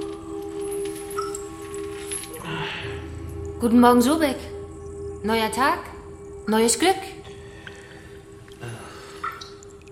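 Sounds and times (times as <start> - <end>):
water dripping: 0.0 - 9.9
speech: 3.6 - 4.5, 5.2 - 7.2.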